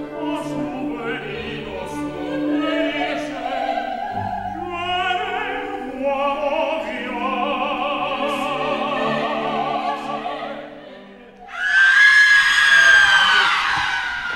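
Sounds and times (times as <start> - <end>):
many voices holding steady sung notes together: 0.0 - 14.3
woman screaming on stage: 11.5 - 14.3.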